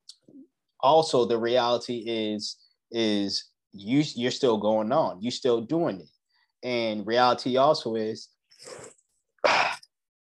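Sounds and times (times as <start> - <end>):
speech: 0.8 - 9.7
person sneezing: 8.6 - 9.9.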